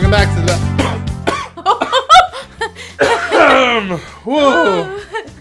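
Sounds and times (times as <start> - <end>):
speech: 0.1 - 0.9, 3.9 - 5.0
person coughing hard on ghost pepper chip caught in throat: 0.8 - 2.3, 3.0 - 4.1
laughter: 1.4 - 5.3.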